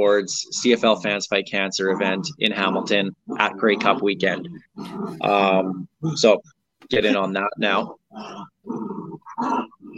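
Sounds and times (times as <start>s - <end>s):
speech: 0.0s - 9.7s
dog grunting and snorting while rolling on the ground: 1.7s - 6.4s, 7.0s - 9.9s.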